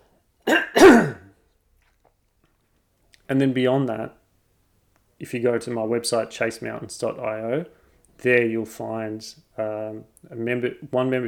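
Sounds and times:
person clearing throat: 0:00.5 - 0:01.3
speech: 0:03.3 - 0:04.2, 0:05.2 - 0:11.2.

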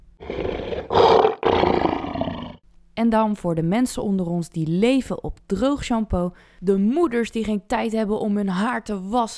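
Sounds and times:
tiger roaring: 0:00.2 - 0:02.6
speech: 0:03.0 - 0:09.3.

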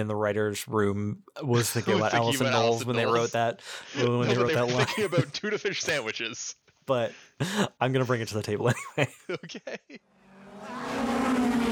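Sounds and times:
speech: 0:00.0 - 0:11.1
laughter: 0:01.4 - 0:06.4, 0:08.7 - 0:10.0
tuner street race car engines revving and roaring: 0:10.2 - 0:11.7.

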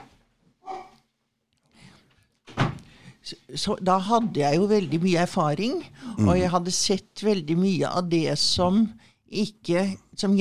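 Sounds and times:
door shutting with a solid thunk: 0:02.5 - 0:02.8
speech: 0:03.3 - 0:10.4.

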